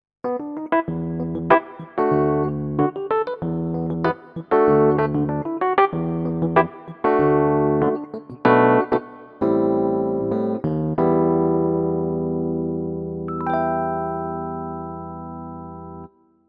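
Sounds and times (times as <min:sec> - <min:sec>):
CP40 electric piano: 0:00.2 - 0:16.2.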